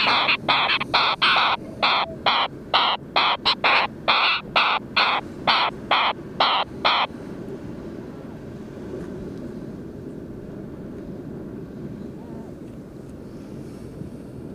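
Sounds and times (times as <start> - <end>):
Wilson's storm petrel Oceanites oceanicus chattering: 0.0 - 7.1
low background rumble: 0.0 - 14.5.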